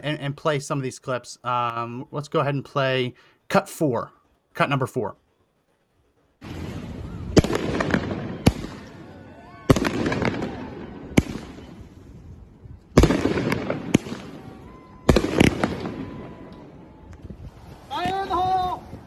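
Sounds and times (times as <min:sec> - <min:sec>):
speech: 0:00.0 - 0:05.2
crackling fireworks bursts: 0:06.4 - 0:17.9
fireworks bangs in a street echoing off buildings: 0:06.4 - 0:19.0.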